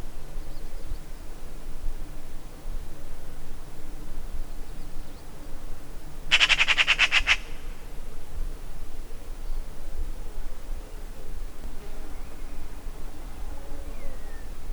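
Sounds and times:
Eurasian magpie Pica pica chattering: 0:06.3 - 0:07.6.

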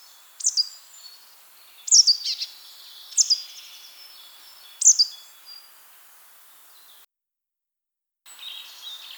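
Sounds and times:
great tit Parus major singing: 0:00.0 - 0:05.8, 0:08.3 - 0:09.1.

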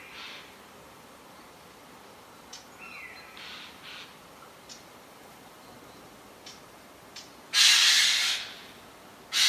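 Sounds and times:
Eurasian jay uttering a loud harsh tearing screech: 0:07.6 - 0:08.5.

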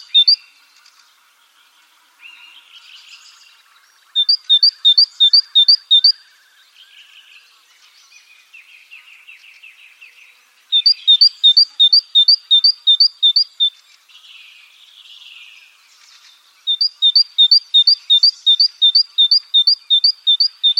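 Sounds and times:
great tit Parus major singing see-sawing two-note phrases: 0:00.0 - 0:00.6, 0:04.0 - 0:06.4, 0:08.1 - 0:20.7.

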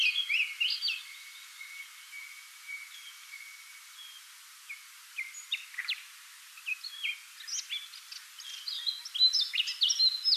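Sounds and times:
Eurasian Blackcap Sylvia atricapilla warbling song: 0:00.0 - 0:03.4, 0:04.0 - 0:10.3.

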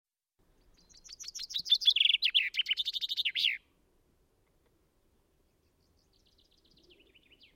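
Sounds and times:
common chaffinch Fringilla coelebs song phrase: 0:00.4 - 0:03.8, 0:05.3 - 0:07.5.

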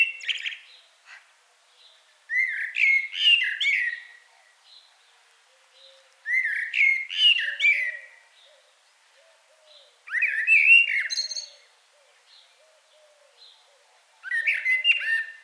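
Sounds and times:
common blackbird singing, Turdus merula: 0:00.0 - 0:00.8, 0:01.8 - 0:04.9, 0:05.8 - 0:15.4.

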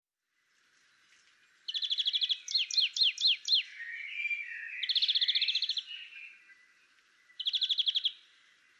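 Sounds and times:
European greenfinch Chloris chloris trills and twittering: 0:00.9 - 0:08.7.

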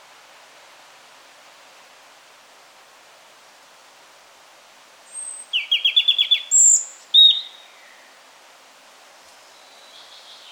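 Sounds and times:
European robin singing: 0:05.1 - 0:08.2, 0:09.5 - 0:10.5.

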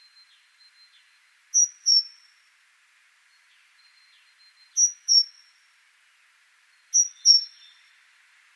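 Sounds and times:
faint hissing insect-like background: 0:00.0 - 0:08.5
great tit Parus major calling: 0:00.9 - 0:02.3, 0:03.9 - 0:05.5, 0:06.9 - 0:08.0.

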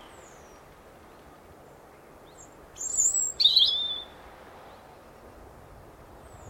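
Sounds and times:
European robin singing: 0:02.2 - 0:04.1.

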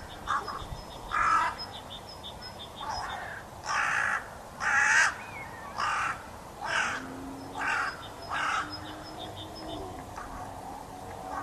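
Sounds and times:
carrion crow Corvus corone giving harsh hoarse caws: 0:00.3 - 0:01.6, 0:02.9 - 0:08.8.

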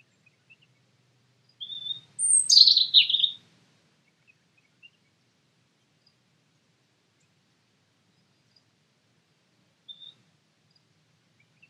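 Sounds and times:
European robin Erithacus rubecula singing: 0:01.6 - 0:03.4, 0:09.9 - 0:10.2.

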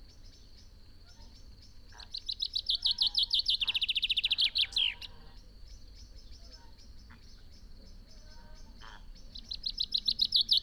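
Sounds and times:
common chaffinch Fringilla coelebs singing: 0:01.6 - 0:05.3, 0:07.5 - 0:10.6.

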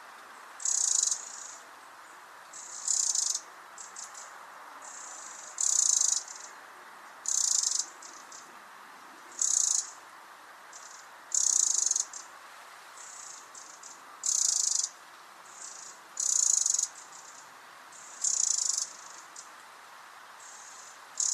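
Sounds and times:
background hiss: 0:00.0 - 0:21.3
Eurasian wren Troglodytes troglodytes rattling call: 0:00.6 - 0:01.6, 0:02.5 - 0:06.5, 0:07.2 - 0:08.5, 0:09.3 - 0:10.0, 0:10.7 - 0:12.3, 0:13.0 - 0:19.5, 0:20.4 - 0:21.3.

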